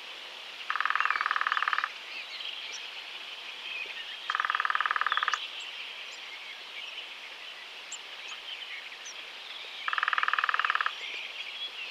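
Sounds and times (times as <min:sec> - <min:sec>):
faint bird calls: 0:00.6 - 0:02.9, 0:03.8 - 0:11.8
woodpecker drumming: 0:00.7 - 0:01.9, 0:04.3 - 0:05.4, 0:09.9 - 0:10.9.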